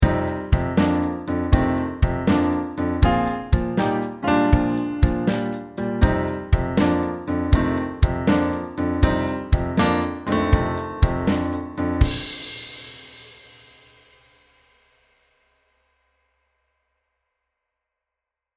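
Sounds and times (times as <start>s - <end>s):
left hand shuffle rock piano: 0.0s - 12.5s.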